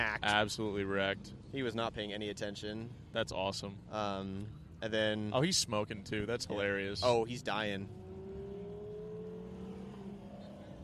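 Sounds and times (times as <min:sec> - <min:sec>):
speech: 0:00.0 - 0:08.0
Gallardo Spider sports car rolling by at a cars-and-coffee meet: 0:07.0 - 0:10.8.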